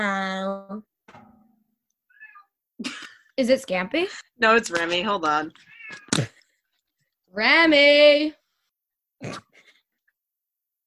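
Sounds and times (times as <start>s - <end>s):
cat meowing: 2.1s - 2.5s, 5.6s - 6.1s
speech: 2.8s - 6.3s, 7.4s - 8.4s.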